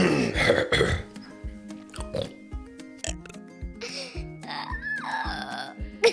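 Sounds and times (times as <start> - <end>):
guttural croaks: 0.0 - 1.1, 1.9 - 2.4, 3.0 - 3.4
loud wet burp: 0.0 - 1.1, 1.9 - 2.4, 3.0 - 3.3
bouncy cartoonish music track with a steady thumping beat: 0.0 - 6.1.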